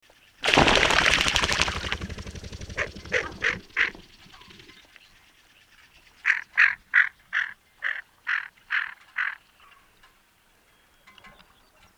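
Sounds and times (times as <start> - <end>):
greater scaup Aythya marila nearctica calling: 1.3 - 4.8, 6.2 - 9.4.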